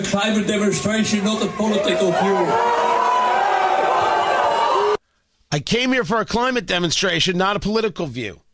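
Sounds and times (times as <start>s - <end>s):
speech: 0.0s - 3.0s, 5.5s - 8.4s
dense crowd booing and jeering at a demonstration: 0.3s - 5.0s.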